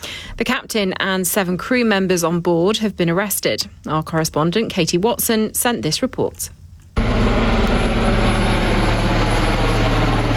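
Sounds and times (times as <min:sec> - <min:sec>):
speech: 0:00.4 - 0:06.6
helicopter rotor blades chopping over a deep engine drone: 0:07.0 - 0:10.3.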